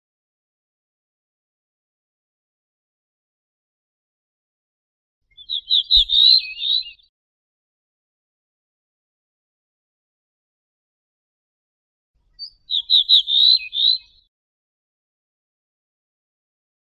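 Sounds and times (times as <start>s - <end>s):
Ortolan bunting singing: 5.3s - 7.1s, 12.2s - 14.3s.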